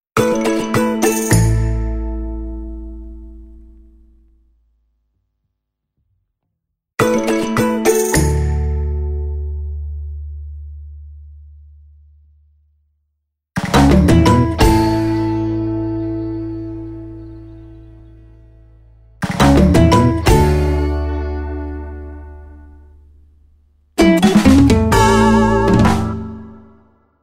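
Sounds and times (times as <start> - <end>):
ukulele jingle: 0.2 - 3.8, 7.0 - 9.4, 13.7 - 17.2, 19.3 - 22.7, 24.0 - 26.7.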